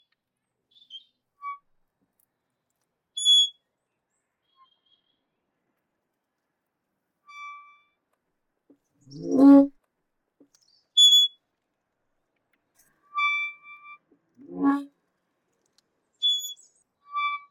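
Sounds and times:
wooden and metal gate hinge creaking: 0:03.2 - 0:03.5, 0:07.3 - 0:07.8, 0:13.0 - 0:14.9, 0:16.2 - 0:17.4.

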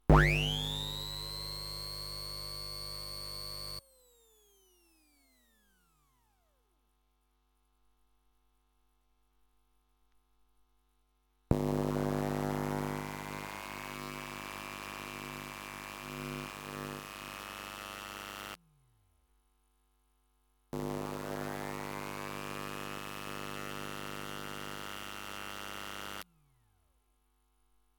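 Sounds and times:
Dremel on Squier P-Bass guitar pickup: 0:00.1 - 0:03.8, 0:11.5 - 0:18.6, 0:20.8 - 0:26.2.

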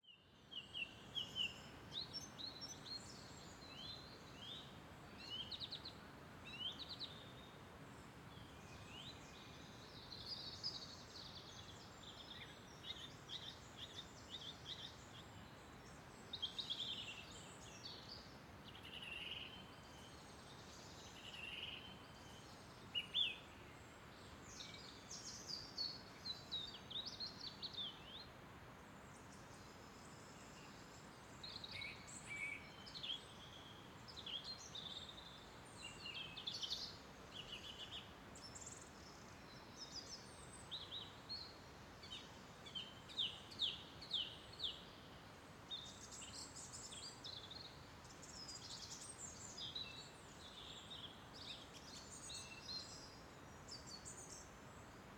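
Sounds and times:
birds in a daytime spring forest: 0:00.0 - 0:55.1.

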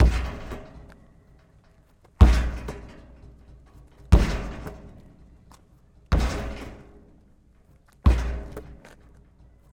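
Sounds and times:
basketball hitting backboard hoop outdoors in a street game: 0:00.0 - 0:00.8, 0:02.2 - 0:02.8, 0:04.1 - 0:04.9, 0:08.0 - 0:09.0.

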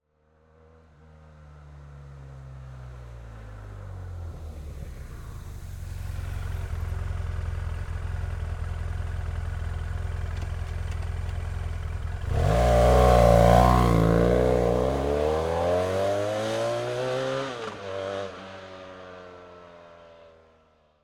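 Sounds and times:
798cc four-stroke motorcycle approaching, idling, driving away and accelerating: 0:03.5 - 0:19.7.

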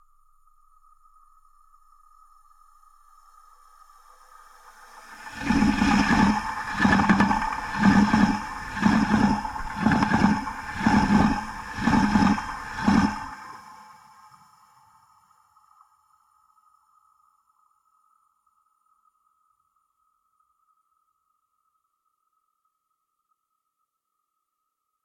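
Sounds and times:
passing trains recorded with contact mics on rails: 0:05.0 - 0:14.0.

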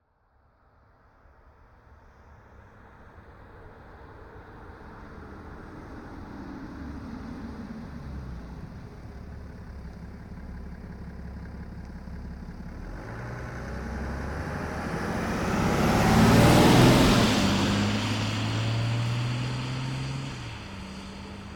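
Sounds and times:
BMW F12 640D Gran Coupe stopping on wet asphalt from 40kmph: 0:02.2 - 0:21.5.

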